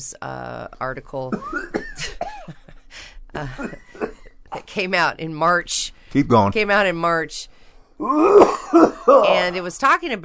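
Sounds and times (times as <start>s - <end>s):
speech: 0.0s - 2.2s, 3.4s - 3.8s, 4.7s - 10.2s
harsh coughing: 1.3s - 2.8s, 3.4s - 4.7s, 8.1s - 9.4s.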